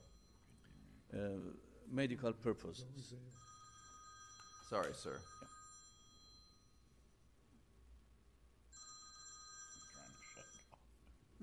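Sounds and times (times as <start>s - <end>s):
speech: 1.1s - 3.6s, 4.7s - 5.6s
phone ringing with a bright electronic tone: 3.3s - 7.1s, 8.7s - 10.7s.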